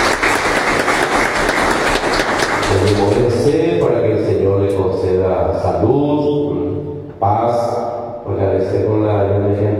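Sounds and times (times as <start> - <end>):
crowd applauding for a woman's 100th birthday: 0.0 - 3.5
speech: 2.9 - 9.7.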